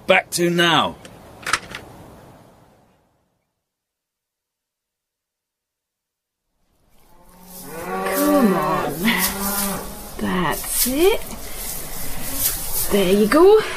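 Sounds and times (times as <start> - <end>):
speech: 0.1 - 1.0, 10.8 - 11.4, 12.9 - 13.7
cows mooing: 7.0 - 13.7.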